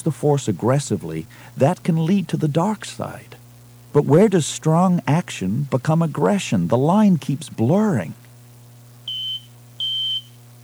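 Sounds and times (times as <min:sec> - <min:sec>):
speech: 0:00.0 - 0:08.2
spaceship cockpit console beeping: 0:09.1 - 0:10.6.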